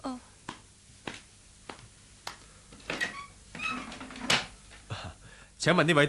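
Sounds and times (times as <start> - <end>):
door creaking as it swings: 2.8 - 4.6
speech: 5.6 - 6.0.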